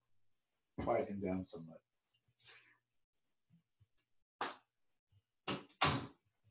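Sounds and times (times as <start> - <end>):
speech: 0.8 - 2.6
office door closing: 5.5 - 6.1.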